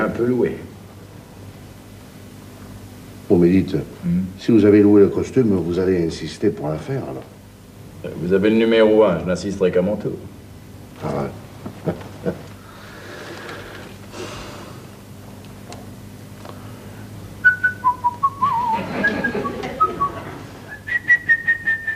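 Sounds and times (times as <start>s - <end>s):
speech: 0.2s - 0.7s, 3.3s - 7.4s, 8.0s - 10.3s, 11.0s - 12.4s
laughter: 11.7s - 12.6s, 18.4s - 20.7s
person whistling a tune: 17.4s - 21.9s.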